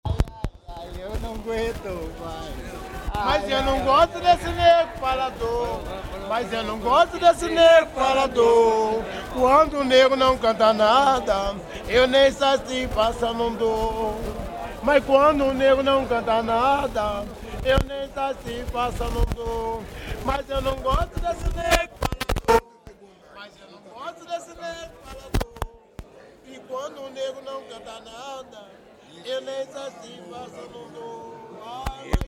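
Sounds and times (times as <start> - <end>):
batuque de umbigada drumming and singing: 0.1 - 22.6.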